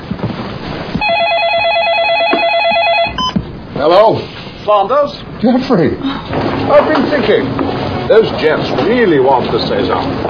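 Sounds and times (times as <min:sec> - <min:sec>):
telephone ringing with electronic trill: 0:01.0 - 0:03.4
noise: 0:03.3 - 0:10.2
speech: 0:03.8 - 0:10.2.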